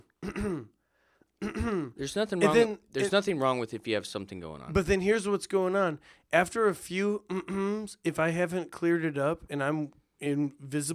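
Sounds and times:
person clearing throat as a nervous habit: 0.0s - 0.8s, 1.4s - 2.0s, 7.3s - 7.8s
speech: 0.2s - 0.8s, 1.4s - 10.9s.

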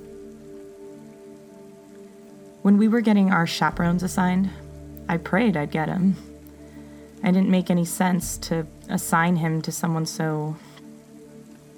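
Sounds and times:
steady rain hiss: 0.0s - 11.7s
speech: 2.6s - 6.3s, 7.2s - 10.7s
low droning hum: 3.6s - 9.7s.

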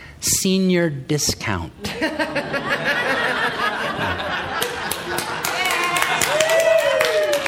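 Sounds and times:
speech: 0.2s - 3.6s
crowd laughing: 1.8s - 7.4s
crowd applauding: 3.1s - 7.4s
person whooping: 5.6s - 7.4s.

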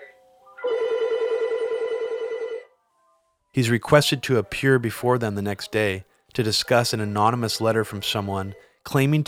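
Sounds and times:
telephone bell ringing: 0.6s - 2.7s
speech: 3.5s - 9.2s.

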